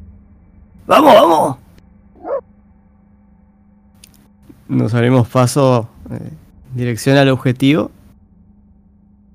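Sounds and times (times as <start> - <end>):
low hum: 0.0 - 9.3
speech: 0.8 - 1.6, 4.7 - 8.0
dog barking: 2.2 - 2.4.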